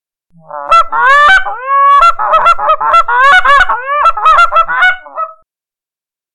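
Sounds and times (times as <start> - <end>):
flock of Canada geese honking in flight at night: 0.5 - 5.3.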